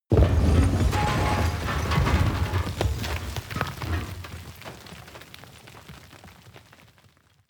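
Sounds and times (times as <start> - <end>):
large explosion with shrapnel and dirt: 0.1 - 5.1.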